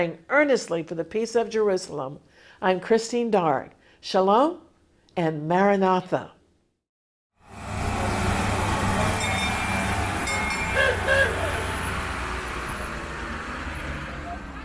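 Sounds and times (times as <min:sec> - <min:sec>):
speech: 0:00.0 - 0:04.6, 0:05.2 - 0:06.4
small tourist road train engine and wheels rumbling along a street: 0:07.4 - 0:14.6.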